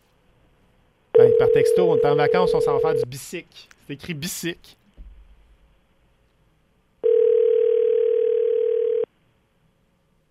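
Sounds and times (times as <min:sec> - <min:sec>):
speech: 0:01.4 - 0:04.8
telephone dial tone of a call to a listener: 0:07.0 - 0:09.1.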